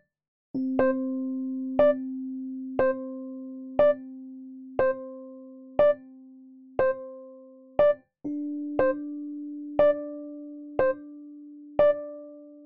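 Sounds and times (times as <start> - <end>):
Pianoteq electric piano: 0.6 - 12.6.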